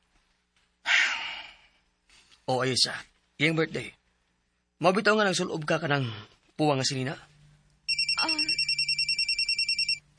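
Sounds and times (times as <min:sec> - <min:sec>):
speech: 0:02.5 - 0:04.0, 0:04.8 - 0:07.3
phone ringtone for an incoming call: 0:07.9 - 0:10.0.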